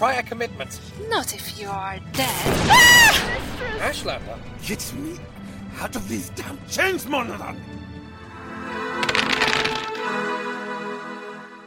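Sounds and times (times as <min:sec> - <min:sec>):
speech: 0:00.0 - 0:07.8
dice clattering and tumbling across a table: 0:09.0 - 0:10.0.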